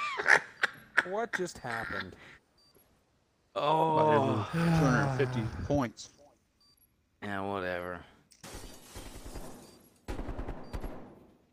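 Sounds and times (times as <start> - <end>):
speech: 0.2 - 2.4, 3.6 - 6.2, 7.2 - 8.1
gunfire in a shooter video game: 8.4 - 11.5.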